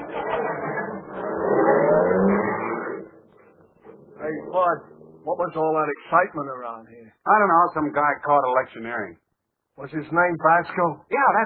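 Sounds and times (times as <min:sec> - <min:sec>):
police car engine revving as the car pulls away: 0:00.0 - 0:06.2
speech: 0:04.5 - 0:09.2, 0:09.8 - 0:11.4.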